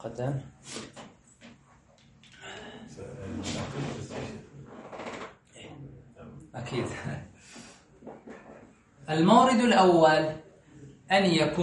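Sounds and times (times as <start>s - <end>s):
speech: 0.0s - 0.9s, 9.1s - 10.4s, 11.1s - 11.6s
chair dragged and shuffled into a new position: 3.3s - 5.4s.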